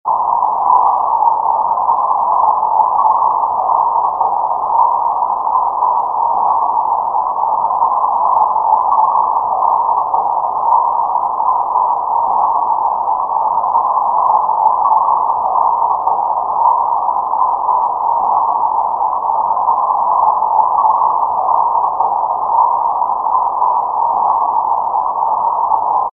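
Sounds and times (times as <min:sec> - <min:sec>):
harmonic noise: 0:00.0 - 0:26.1.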